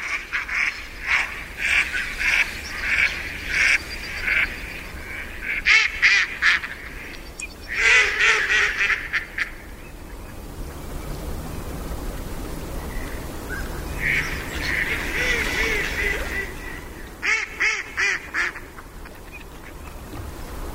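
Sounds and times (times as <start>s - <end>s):
mallard ducks quacking on a pond at dusk: 0.0s - 9.7s, 13.9s - 19.9s
ambient water and breeze on a pond at dusk: 0.0s - 20.7s.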